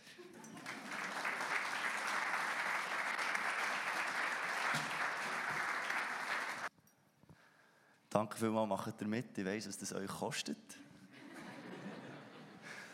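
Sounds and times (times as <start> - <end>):
audience applause: 0.4 - 6.7
speech: 8.2 - 10.8
laughter: 11.1 - 12.9.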